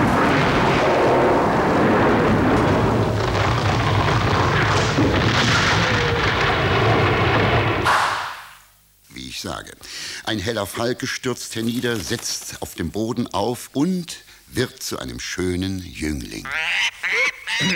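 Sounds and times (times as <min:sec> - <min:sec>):
thunderclap with lightning in a storm: 0:00.0 - 0:07.9
speech: 0:10.3 - 0:17.7.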